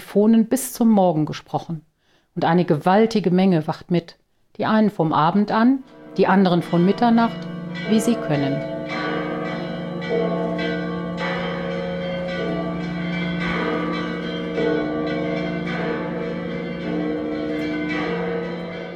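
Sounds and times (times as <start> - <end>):
speech: 0.1 - 9.0
full peal of church bells of a church in Jerusalem: 5.8 - 18.9.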